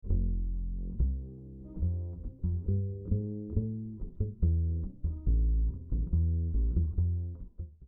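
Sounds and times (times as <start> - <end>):
raw bass guitar direct input: 0.0 - 7.8.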